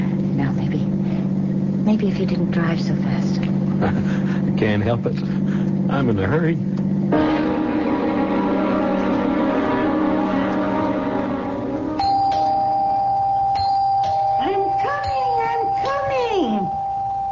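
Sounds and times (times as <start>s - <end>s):
engine drone: 0.0s - 13.0s
speech: 1.9s - 7.3s
doorbell ringing: 8.5s - 17.1s.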